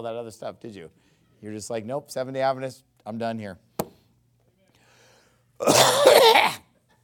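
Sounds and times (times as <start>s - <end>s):
speech: 0.0s - 3.7s, 5.6s - 6.4s
harsh raspy cough: 5.6s - 6.7s.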